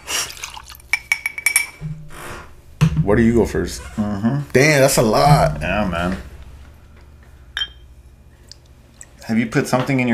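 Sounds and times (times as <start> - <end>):
tequila poured into a glass: 0.2 - 1.1
ringing clinks of the glass: 0.9 - 1.8, 7.6 - 7.8
speech: 3.1 - 6.3, 9.3 - 10.1.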